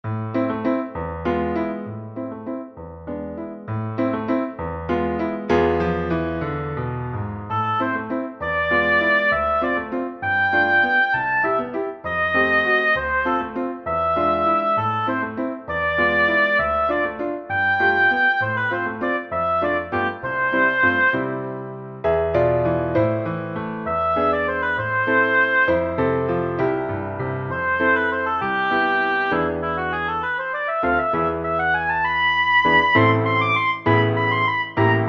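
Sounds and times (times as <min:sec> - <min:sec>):
piano: 0:00.0 - 0:35.0
oboe in A minor: 0:07.4 - 0:21.6, 0:23.8 - 0:35.0.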